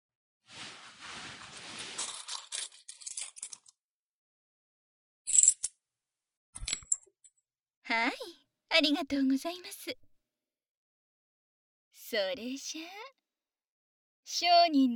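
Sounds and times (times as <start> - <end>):
rustling as payment is handed over: 0.5 - 3.6
coins dropping as payment is handed over: 2.0 - 3.7, 5.3 - 5.7
speech: 7.9 - 10.1, 12.1 - 13.2, 14.3 - 14.9.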